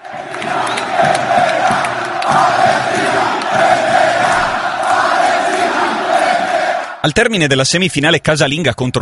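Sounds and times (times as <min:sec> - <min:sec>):
dense roar of many people in a stadium: 0:00.0 - 0:07.1
football fans chanting in unison in their home stadium: 0:00.0 - 0:07.1
speech: 0:07.0 - 0:09.0.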